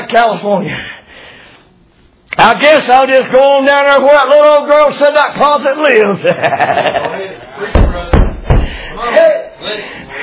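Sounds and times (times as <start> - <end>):
speech: 0.1 - 1.0, 2.4 - 7.8, 9.1 - 10.2
laughter: 6.0 - 7.7
firm knocks on a door: 7.7 - 8.8.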